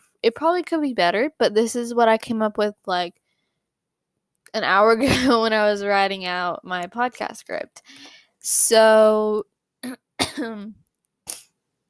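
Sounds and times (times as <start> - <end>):
speech: 0.2 - 3.2, 4.5 - 10.8
person coughing after choking up: 9.8 - 10.7.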